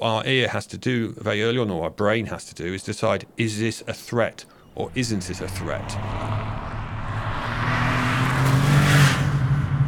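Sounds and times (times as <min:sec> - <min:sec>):
speech: 0:00.0 - 0:06.4
car tires screeching: 0:04.6 - 0:09.8
car engine revving: 0:04.7 - 0:09.8.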